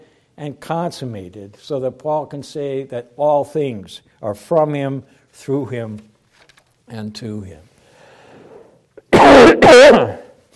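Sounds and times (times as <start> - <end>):
speech: 0.4 - 6.1, 6.9 - 7.7, 9.7 - 10.2
person coughing into elbow: 9.0 - 10.2.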